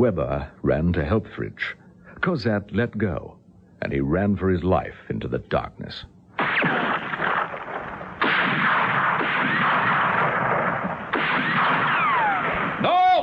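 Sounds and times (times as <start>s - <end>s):
speech: 0.0s - 6.8s
gunfire: 6.4s - 13.0s.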